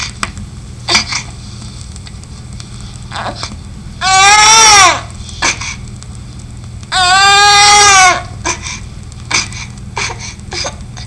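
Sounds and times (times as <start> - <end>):
child crying: 3.2 - 5.1, 6.9 - 8.6.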